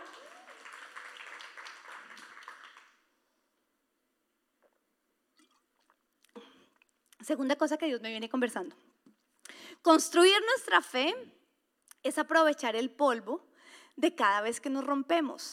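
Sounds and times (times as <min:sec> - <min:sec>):
crowd applause: 0:00.0 - 0:03.0
scattered handclaps: 0:00.0 - 0:03.0
speech: 0:07.2 - 0:08.9, 0:09.8 - 0:11.4, 0:12.0 - 0:15.5.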